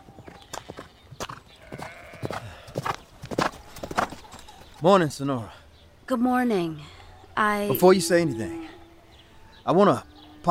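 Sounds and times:
horse hooves clip-clopping: 0.0 - 4.8
speech: 4.8 - 8.6, 9.6 - 10.4.

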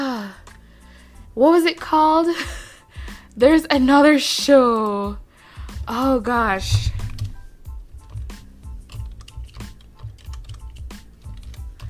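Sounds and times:
speech: 1.4 - 2.6, 3.4 - 5.2, 5.9 - 7.0
fingers typing on a computer keyboard: 8.8 - 11.8.

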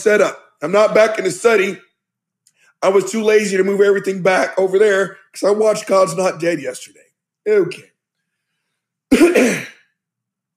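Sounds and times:
speech: 0.0 - 1.9, 2.8 - 7.9, 9.1 - 9.7
throat clearing: 9.1 - 10.0.

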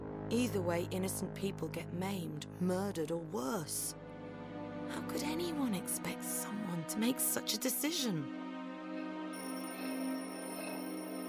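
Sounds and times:
speech: 0.3 - 4.0, 4.9 - 8.4
magic orb ringing like a telephone: 9.4 - 11.2.

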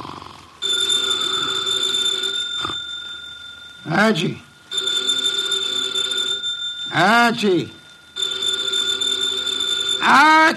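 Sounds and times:
telephone on an office desk ringing: 0.6 - 10.5
speech: 4.0 - 4.4, 7.0 - 7.8, 10.1 - 10.5
man calling out: 10.0 - 10.5.

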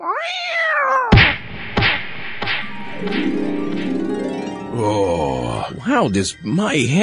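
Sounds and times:
cat yowling while used to hit someone: 0.0 - 1.2
heavy thwacks: 1.1 - 4.0
speech: 3.0 - 3.6, 4.8 - 7.0.

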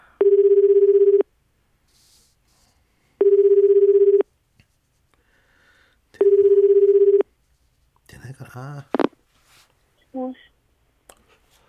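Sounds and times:
ringback tone of a telephone call ringing out: 0.2 - 1.2, 3.2 - 4.2, 6.2 - 7.2.

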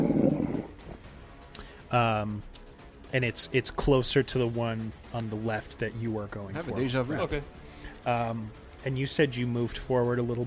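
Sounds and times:
person imitating wolf whimpering and whining: 0.0 - 0.8
speech: 1.9 - 10.4.

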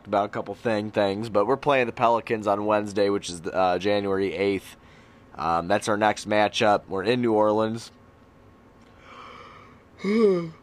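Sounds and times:
speech: 0.1 - 4.8, 5.4 - 8.0, 10.0 - 10.6
breathy voiced drawn-out yawn: 9.0 - 10.6.

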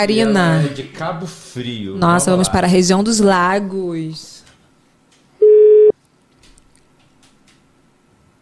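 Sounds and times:
speech: 0.0 - 4.3
telephone line tone while placing a call: 5.4 - 5.9.

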